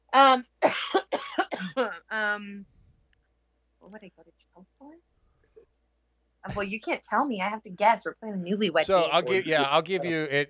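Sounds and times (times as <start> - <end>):
speech: 0.2 - 0.8, 2.2 - 2.8, 3.8 - 5.8, 6.4 - 10.4
raspy coughs: 0.6 - 1.9.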